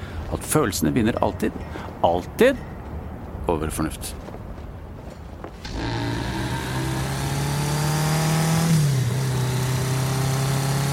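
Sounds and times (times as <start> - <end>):
speech: 0.3 - 2.7, 3.5 - 4.3
car engine droning while driving on a potholed road: 5.6 - 10.9.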